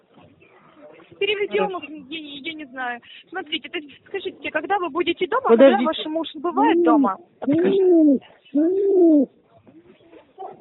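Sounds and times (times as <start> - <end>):
speech: 1.1 - 9.4
pigeons cooing: 6.6 - 9.4.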